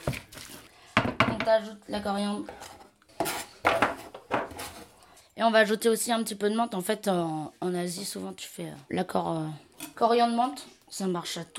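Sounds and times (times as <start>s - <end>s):
speech: 1.5s - 2.6s, 5.4s - 11.5s
utensil scraping and clinking against a salad bowl mixing duck confit filling: 2.4s - 5.0s.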